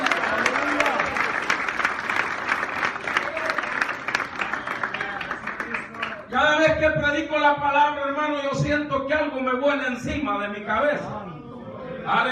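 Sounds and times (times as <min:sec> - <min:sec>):
congregation applauding: 0:00.0 - 0:06.6
speech: 0:07.2 - 0:11.1, 0:12.1 - 0:12.2.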